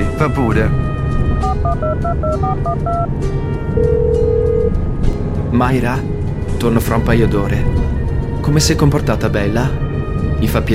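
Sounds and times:
speech: 0.2s - 0.8s, 1.6s - 4.8s, 5.5s - 9.8s, 10.4s - 10.7s
longer steady telephone tone: 1.4s - 3.1s, 3.8s - 4.7s
touch-tone keypad beeps from a telephone dialing: 1.5s - 3.1s.

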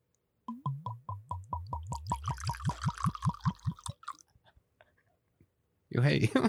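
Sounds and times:
whisky glugging out of a bottle: 0.5s - 4.2s
speech: 6.0s - 6.4s.

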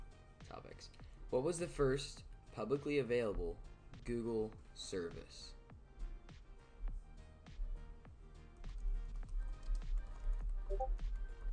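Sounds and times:
speech: 0.5s - 5.6s
keys clacking on a computer keyboard: 8.7s - 10.9s.

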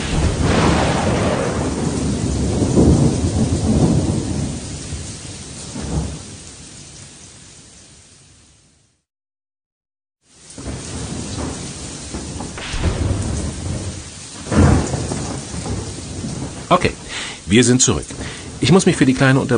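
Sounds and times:
deep rumbling thunder in the jungle: 0.0s - 6.5s, 10.5s - 19.5s
steady rain hissing in a jungle thunderstorm: 0.0s - 9.1s, 10.2s - 19.5s
speech: 16.8s - 19.5s.

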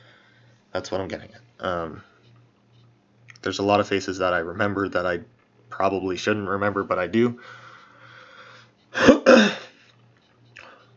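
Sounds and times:
speech: 0.7s - 2.1s, 3.4s - 7.6s
person clearing throat: 9.0s - 9.8s.

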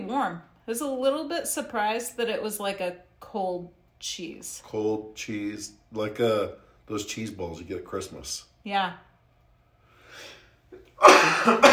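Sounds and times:
speech: 0.1s - 9.1s, 11.0s - 11.7s
person coughing hard and raspy: 10.8s - 11.7s.

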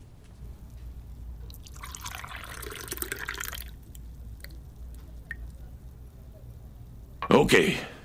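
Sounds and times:
low hum: 0.0s - 8.0s
liquid pouring into a glass: 1.5s - 5.8s
speech: 7.4s - 7.9s.

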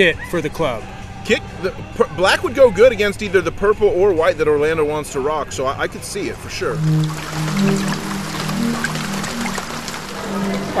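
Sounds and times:
speech: 0.0s - 8.2s
steady rain pattering outside: 6.8s - 10.7s.

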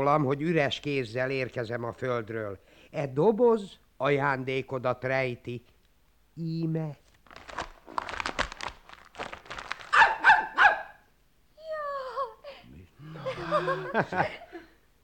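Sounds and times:
speech: 0.0s - 5.7s, 6.4s - 7.0s, 14.0s - 14.4s
black Hungarian puli herding dog barking: 9.9s - 11.0s
laughter: 13.0s - 14.8s.

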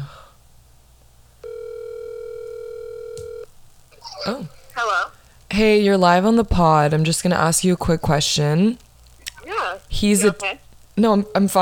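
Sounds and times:
faint hiss: 0.0s - 11.6s
ringback tone of an outgoing telephone call: 1.4s - 3.5s
speech: 4.3s - 8.8s, 9.9s - 11.6s.

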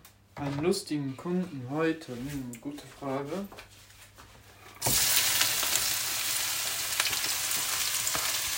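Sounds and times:
speech: 0.4s - 3.8s
food frying in a lot of oil: 4.8s - 8.5s.

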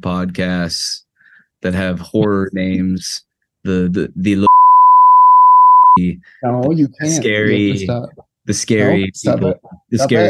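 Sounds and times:
speech: 0.0s - 1.0s, 1.6s - 4.6s, 6.0s - 10.2s
single steady high-pitched beep: 4.5s - 6.0s.

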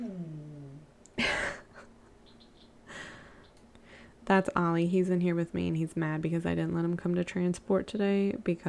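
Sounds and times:
male dog whining in a room: 0.0s - 1.0s
speech: 4.3s - 8.6s.

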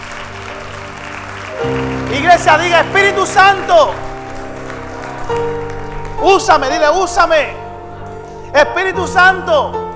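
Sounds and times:
congregation clapping: 0.0s - 7.5s
sustained keyboard chords: 0.0s - 9.9s
speech: 1.6s - 4.1s, 6.2s - 7.6s, 8.5s - 9.8s.

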